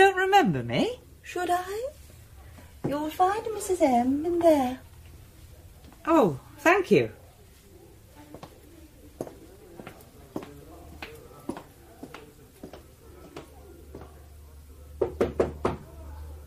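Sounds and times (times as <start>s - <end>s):
speech: 0.4s - 2.0s, 2.8s - 4.9s, 6.0s - 7.2s
knocking on a door: 15.0s - 15.9s.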